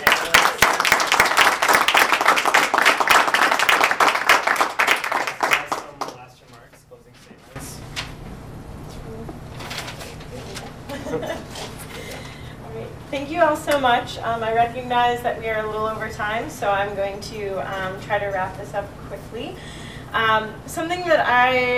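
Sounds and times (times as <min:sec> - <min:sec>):
audience applause: 0:00.0 - 0:06.3
room murmur: 0:00.0 - 0:21.7
laughter: 0:10.9 - 0:12.6
speech: 0:13.7 - 0:21.7.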